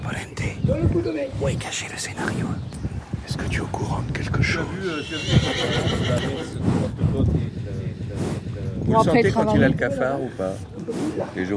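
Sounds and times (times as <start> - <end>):
murmuring voices: 0.0 - 11.5
speech: 0.7 - 7.6, 8.9 - 11.5
horse snorting: 4.4 - 9.6, 10.3 - 11.5
horse whinnying: 4.8 - 6.6.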